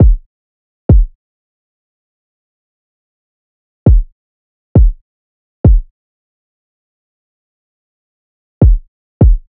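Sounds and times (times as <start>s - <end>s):
kick drum loop stem: 0.0s - 0.3s, 0.9s - 1.2s, 3.9s - 4.1s, 4.8s - 5.0s, 5.6s - 5.9s, 8.6s - 9.4s.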